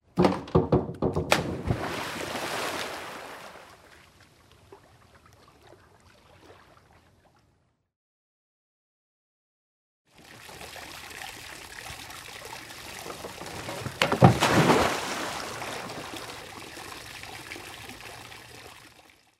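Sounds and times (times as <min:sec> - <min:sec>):
springboard diving: 0:01.2 - 0:03.0, 0:13.5 - 0:16.3.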